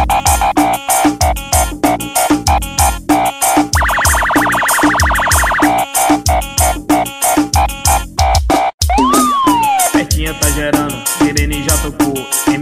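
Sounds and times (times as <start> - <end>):
loud punchy funk beat: 0.0 - 12.5
sampled siren wail: 3.8 - 5.9, 8.9 - 10.0
stabbing synth chords: 3.8 - 5.9.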